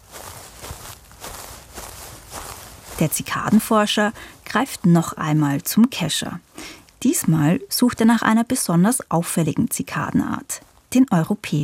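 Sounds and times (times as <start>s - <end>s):
footsteps walking steeply downhill from a vineyard to a meadow: 0.0s - 8.3s
speech: 3.0s - 11.6s.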